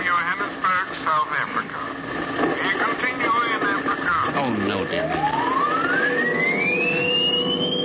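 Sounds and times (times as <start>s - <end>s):
dense radio static hiss: 0.0s - 5.2s
radio transmission whistle gliding upward in pitch: 5.0s - 7.8s.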